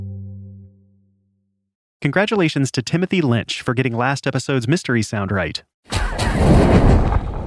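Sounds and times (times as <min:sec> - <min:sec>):
speech: 0:02.1 - 0:06.9
film sound effect of a magic umbrella lighting a fire: 0:05.9 - 0:07.4.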